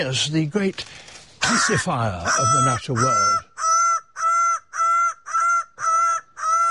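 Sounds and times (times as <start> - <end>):
speech: 0.0 - 3.5
bird of paradise calling loudly with harsh nasal honking cries: 1.4 - 6.6.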